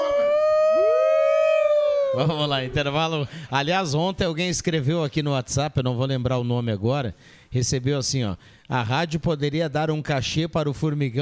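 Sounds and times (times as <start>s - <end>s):
wolf howling: 0.0s - 2.4s
speech: 2.2s - 11.2s.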